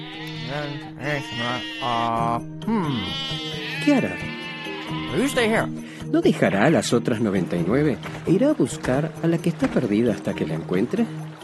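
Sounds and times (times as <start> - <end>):
sheep bleating: 0.0 - 5.7
speech: 0.5 - 4.3, 4.9 - 11.4.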